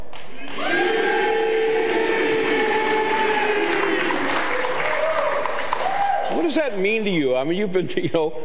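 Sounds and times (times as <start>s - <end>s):
crowd cheering: 0.3s - 6.8s
large crowd chanting a single drawn-out name: 0.4s - 4.5s
speech: 6.7s - 8.4s.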